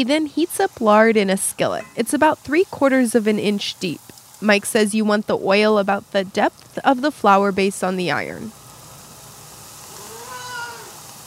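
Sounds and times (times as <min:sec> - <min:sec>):
speech: 0:00.0 - 0:08.6
steady hiss: 0:00.0 - 0:11.2
cat meowing: 0:10.0 - 0:11.0.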